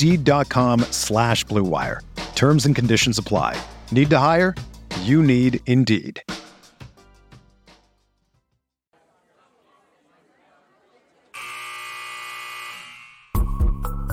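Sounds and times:
speech: 0.0s - 6.4s
crowd murmuring and chatting: 9.0s - 11.4s
loud sustained electronic buzzer blaring: 11.4s - 13.6s.

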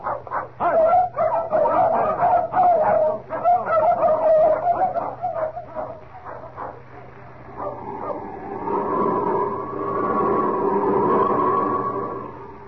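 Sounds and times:
several dogs barking excitedly in overlapping bursts: 0.0s - 8.2s
steady sustained droning hum: 0.0s - 12.6s.

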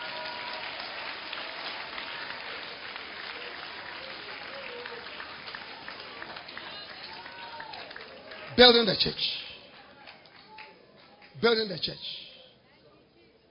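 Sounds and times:
crowd clapping hands: 0.0s - 12.0s.

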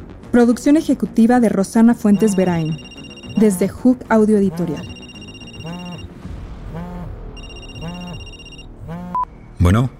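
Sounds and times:
speech: 0.4s - 4.9s, 9.6s - 9.9s
telephone ringing with warbling electronic tone: 2.1s - 3.8s, 4.6s - 6.1s, 7.4s - 8.7s.

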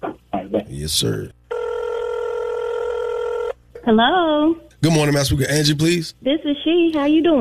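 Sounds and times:
speech: 0.5s - 1.4s, 3.8s - 7.3s
telephone ringback tone heard through the line: 1.5s - 3.5s.

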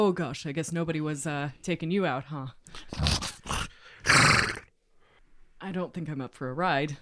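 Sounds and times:
speech: 0.0s - 3.2s, 5.6s - 7.0s
massive horse snorting and whinnying in a stable: 2.9s - 4.7s.

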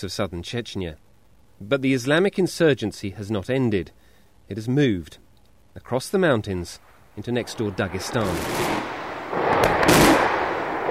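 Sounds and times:
speech: 0.0s - 1.0s, 1.6s - 5.2s, 5.8s - 8.7s
heavy gunfire and blasts from a full-scale battle with tanks and helicopter gunships in mountains: 8.0s - 10.8s.

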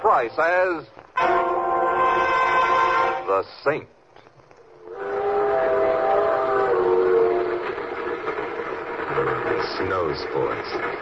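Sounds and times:
ski train rumbling along: 0.0s - 3.6s, 4.8s - 11.0s
speech: 0.1s - 1.4s, 3.3s - 4.0s, 9.2s - 11.0s
ski train whistle long multi-toned blast: 1.2s - 3.3s, 4.9s - 7.7s.

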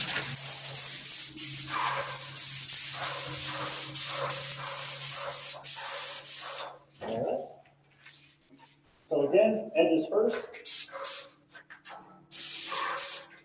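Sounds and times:
handheld spray gun spraying varnish coating: 0.0s - 6.7s, 10.6s - 11.3s, 12.3s - 13.4s
speech: 9.3s - 10.8s.

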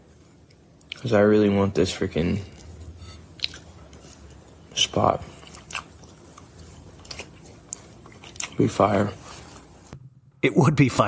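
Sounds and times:
speech: 1.0s - 2.5s, 5.0s - 5.3s, 8.6s - 9.2s, 10.4s - 11.0s
man chewing with mouth open: 2.4s - 8.7s.

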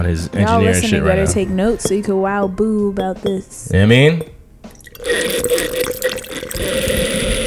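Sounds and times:
speech: 0.0s - 4.4s
wine pouring into a glass decanter: 4.8s - 7.4s.

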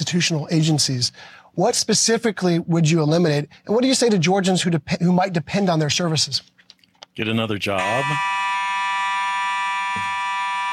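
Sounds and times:
speech: 0.1s - 6.5s, 7.2s - 8.4s
fire alarm blaring with high-pitched electronic tone: 7.8s - 10.7s.

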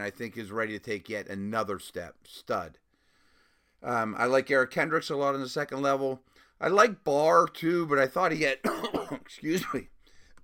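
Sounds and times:
speech: 0.0s - 2.8s, 3.8s - 9.9s
man clearing his throat: 8.6s - 9.9s
man with a lingering cough coughing: 8.6s - 9.9s.

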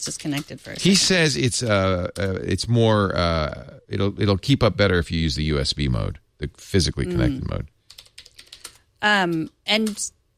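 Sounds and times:
speech: 0.0s - 7.7s, 9.0s - 10.2s
typing on a wireless typewriter-style keyboard: 7.9s - 10.1s.

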